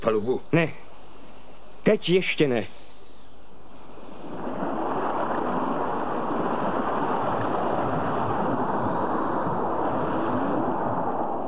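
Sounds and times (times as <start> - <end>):
speech: 0.0 - 0.8, 1.8 - 2.8
wind roaring against a ship: 0.0 - 11.4
sea waves washing against a ship: 3.5 - 11.4.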